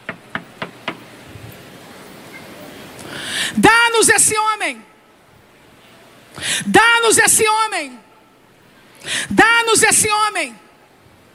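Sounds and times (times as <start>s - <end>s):
faint room hiss: 0.0s - 11.3s
knocking on a door: 0.1s - 1.0s
speech: 3.5s - 4.9s, 6.6s - 8.0s, 9.0s - 10.6s.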